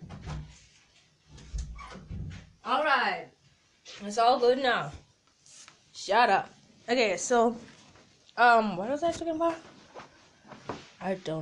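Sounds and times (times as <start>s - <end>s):
door being shifted and wedged in place: 1.3s - 2.6s
speech: 2.7s - 5.0s, 6.1s - 7.7s, 8.4s - 9.7s, 11.0s - 11.3s.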